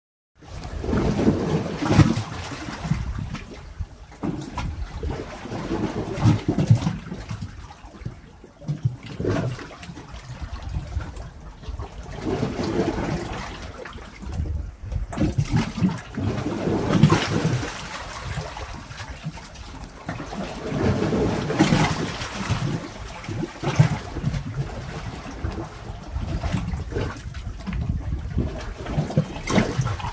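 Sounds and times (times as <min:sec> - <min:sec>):
water at a beach: 0:00.4 - 0:30.1.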